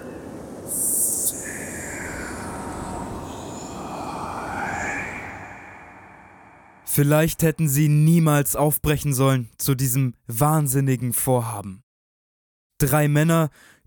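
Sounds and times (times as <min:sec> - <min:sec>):
sharp hiss: 0:00.0 - 0:06.6
eerie whistling tones: 0:00.0 - 0:07.0
sandstorm wind roaring: 0:00.0 - 0:07.0
speech: 0:06.9 - 0:11.8, 0:12.8 - 0:13.7.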